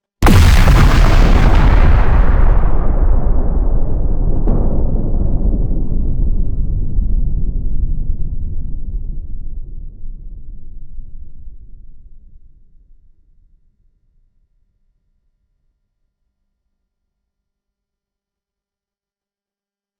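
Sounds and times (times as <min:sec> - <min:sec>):
big nuclear explosion: 0:00.2 - 0:09.5.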